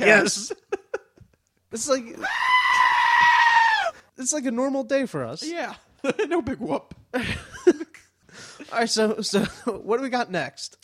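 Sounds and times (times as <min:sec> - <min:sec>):
speech: 0:00.0 - 0:00.6, 0:01.7 - 0:03.0, 0:04.2 - 0:07.5, 0:08.7 - 0:10.8
person imitating a screaming goat: 0:02.2 - 0:04.0.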